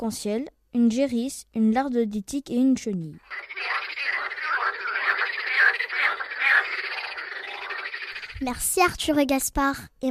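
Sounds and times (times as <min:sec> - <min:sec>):
speech: 0:00.0 - 0:03.8, 0:08.4 - 0:10.0
chorus of green frogs croaking at the ballast pits of Barjouville: 0:03.2 - 0:08.6.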